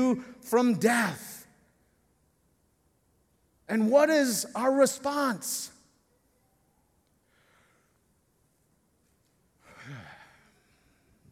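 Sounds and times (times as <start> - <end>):
speech: 0.0 - 1.3, 3.7 - 5.8
person yawning long and breathy: 9.7 - 10.5.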